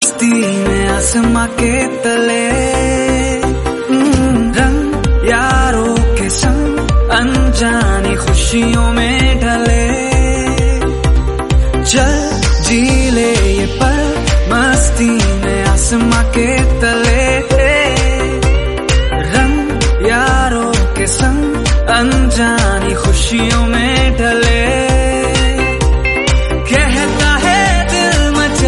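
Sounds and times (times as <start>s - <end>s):
Hindi song: 0.0s - 28.6s.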